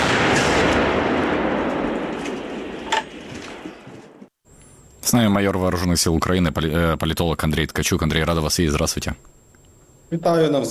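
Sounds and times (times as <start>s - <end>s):
wartime artillery gun firing a shot: 0.0s - 4.3s
speech: 5.1s - 9.4s, 10.1s - 10.6s.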